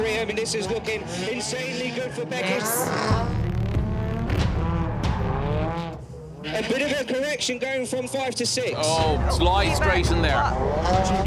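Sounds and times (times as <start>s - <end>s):
speech: 0.2s - 3.5s, 6.4s - 11.2s
car engine revving hard under heavy throttle during a competition qualifying run: 0.4s - 6.8s, 9.0s - 11.2s.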